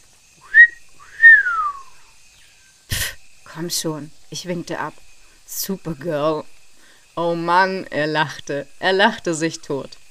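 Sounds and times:
person whistling: 0.4 - 2.0
speech: 3.6 - 6.5, 7.2 - 10.0.

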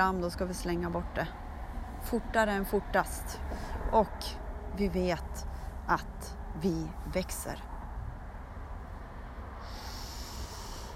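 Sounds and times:
speech: 0.0 - 1.4, 2.0 - 7.7
long breath during a breathing exercise: 3.5 - 3.9, 9.6 - 10.9.

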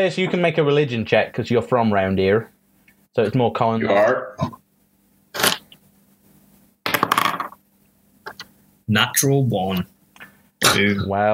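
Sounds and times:
speech: 0.0 - 4.6, 8.9 - 9.9, 10.6 - 11.3
dice clattering across a hard tabletop: 6.9 - 7.6.

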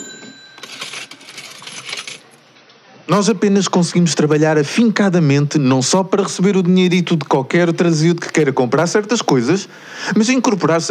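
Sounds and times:
coins clinking and jingling: 0.0 - 2.4
speech: 3.1 - 10.8.

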